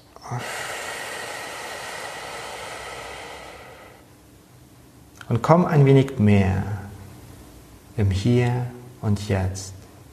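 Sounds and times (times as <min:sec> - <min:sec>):
speech: 0:00.2 - 0:00.7, 0:05.3 - 0:06.8, 0:08.0 - 0:09.8
slow exhalation of breath: 0:00.2 - 0:04.2.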